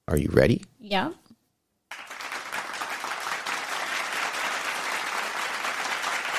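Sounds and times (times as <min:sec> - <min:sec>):
speech: 0:00.1 - 0:01.2
crowd applause with many hands clapping: 0:01.9 - 0:06.3.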